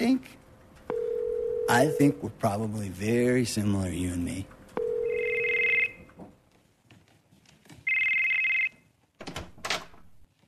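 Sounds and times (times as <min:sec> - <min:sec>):
phone ringtone: 0:00.9 - 0:02.2, 0:04.8 - 0:06.0, 0:07.9 - 0:08.7
speech: 0:01.7 - 0:04.6.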